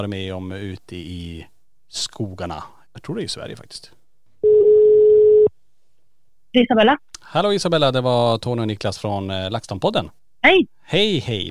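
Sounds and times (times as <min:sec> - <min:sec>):
speech: 0:00.0 - 0:04.0, 0:06.5 - 0:11.4
telephone ringing tone while placing a call: 0:04.4 - 0:05.5.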